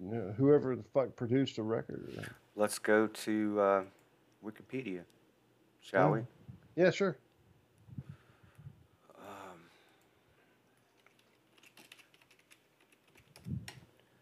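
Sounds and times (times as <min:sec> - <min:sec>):
speech: 0:00.1 - 0:05.2, 0:05.8 - 0:07.2
fast typing on a computer keyboard: 0:11.0 - 0:13.9.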